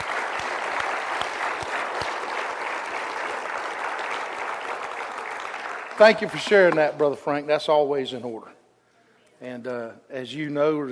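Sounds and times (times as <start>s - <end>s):
audience clapping hands in praise: 0.0s - 6.8s
speech: 6.0s - 8.6s, 9.4s - 10.9s.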